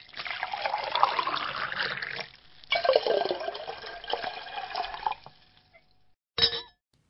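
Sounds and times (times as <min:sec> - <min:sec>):
sparkling cooler pouring into a glass: 0:00.0 - 0:05.4.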